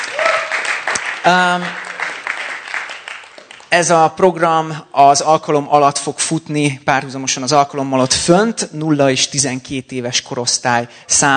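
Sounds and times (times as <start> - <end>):
sustained vocal cheer: 0.0 - 2.2
crowd clapping: 0.0 - 4.0
speech: 1.2 - 1.8, 3.7 - 11.3.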